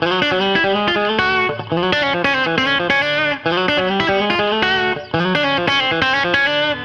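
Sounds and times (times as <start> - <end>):
country guitar chorus section: 0.0 - 6.8.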